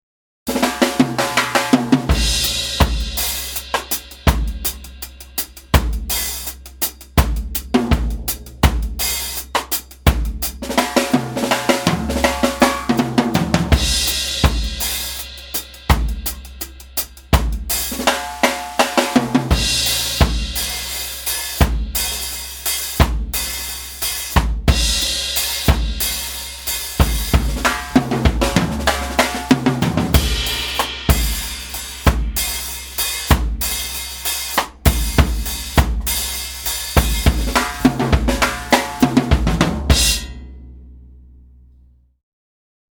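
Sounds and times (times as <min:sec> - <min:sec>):
ska rocksteady drum kit playing: 0:00.5 - 0:41.0.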